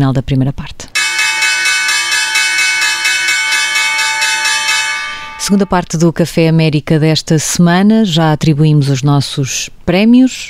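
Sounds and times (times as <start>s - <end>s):
speech: 0.0s - 0.9s, 5.4s - 10.4s
stock exchange opening bell ringing: 1.0s - 5.8s.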